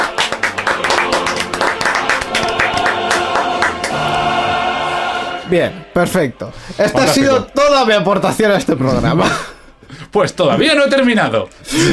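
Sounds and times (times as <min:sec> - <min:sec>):
small crowd applauding: 0:00.0 - 0:04.6
speech: 0:05.5 - 0:11.9.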